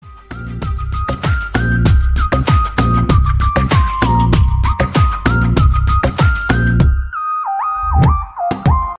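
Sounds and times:
bass tune: 0.2 - 7.2, 7.8 - 8.9.

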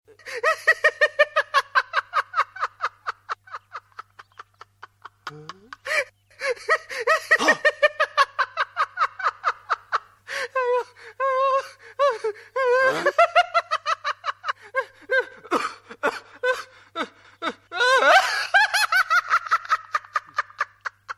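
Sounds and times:
friends laughing: 0.2 - 21.1.

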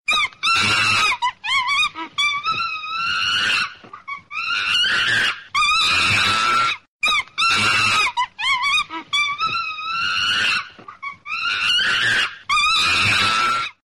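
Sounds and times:
angry chimpanzee: 0.1 - 13.8.

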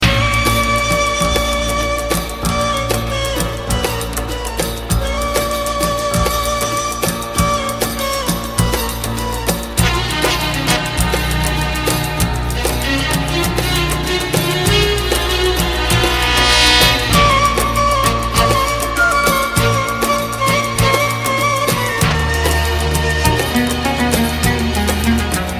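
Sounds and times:
sad Arabic classical music: 0.0 - 25.5.

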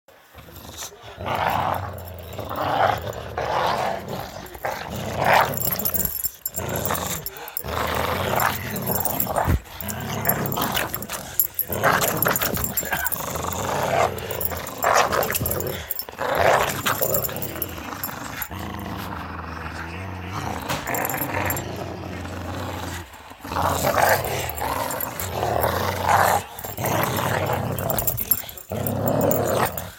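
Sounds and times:
dogs growling: 0.2 - 29.9.

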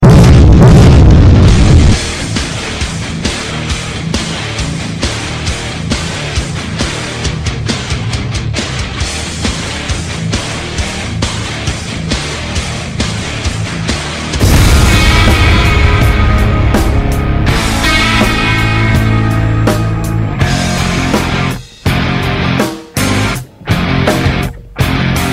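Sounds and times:
explosion mix ringtone: 0.0 - 3.0, 14.4 - 21.7
rock music ringtone: 0.0 - 25.3.

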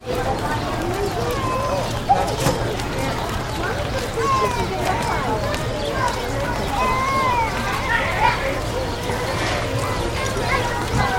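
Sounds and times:
crowd at an outdoor mall: 0.0 - 11.1.

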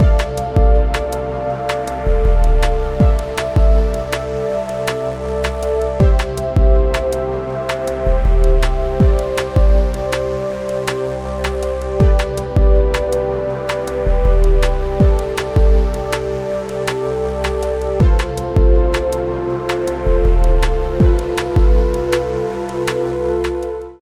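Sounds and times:
atmospheric synth pads: 0.0 - 24.0.

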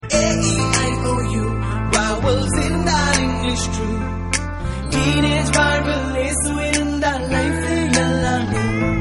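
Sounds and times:
Tamil Christian gospel song: 0.0 - 8.9.

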